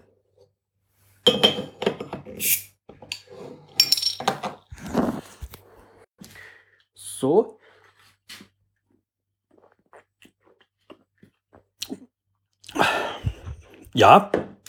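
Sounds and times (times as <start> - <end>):
0.33-litre glass bottle clinking and knocking while handled and opened: 1.3 - 2.1, 3.8 - 4.5
speech: 2.4 - 2.6, 7.2 - 7.5, 14.0 - 14.5.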